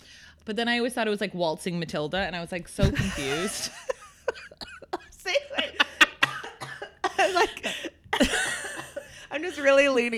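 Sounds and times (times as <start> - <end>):
speech: 0.5 - 3.9, 9.4 - 10.1
laughter: 2.8 - 9.2
person doing a put-on smoker's cough: 6.2 - 9.1.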